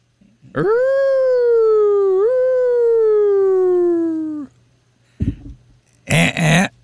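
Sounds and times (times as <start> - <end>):
person imitating a roar with a long loud howl: 0.5 - 4.5.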